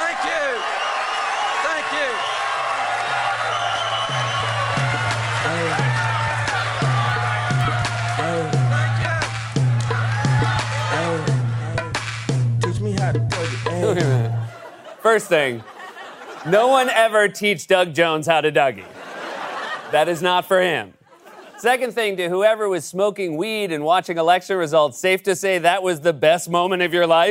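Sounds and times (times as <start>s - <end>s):
excited crowd shouting and chattering at an election-night victory rally: 0.0s - 11.8s
dance music with a steady thumping bass beat: 4.2s - 14.4s
laughter: 13.6s - 17.0s, 18.8s - 21.9s
speech: 15.1s - 15.7s, 16.4s - 19.0s, 19.9s - 21.0s, 21.6s - 27.2s.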